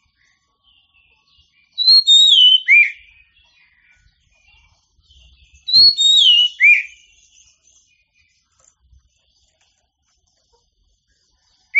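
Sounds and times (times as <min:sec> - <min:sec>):
oriental magpie-robin giving a short sweet whistled phrase: 0:01.8 - 0:03.1, 0:05.6 - 0:07.1.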